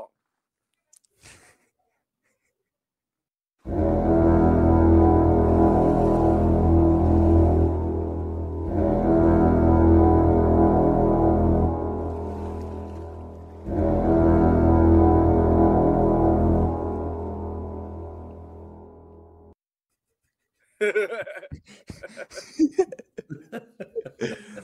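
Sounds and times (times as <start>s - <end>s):
booming victory horn blasts with deep brassy drone: 3.7s - 19.5s
laughter: 20.8s - 24.6s.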